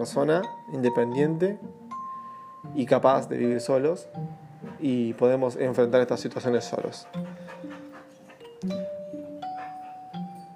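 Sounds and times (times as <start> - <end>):
speech: 0.0 - 1.8, 2.6 - 7.3
dog panting: 4.5 - 10.5
dog whining: 7.0 - 10.5.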